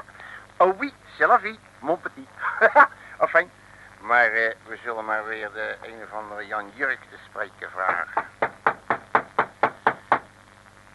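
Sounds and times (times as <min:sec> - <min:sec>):
speech: 0:00.6 - 0:08.3
knocking on an embassy door: 0:08.1 - 0:10.3.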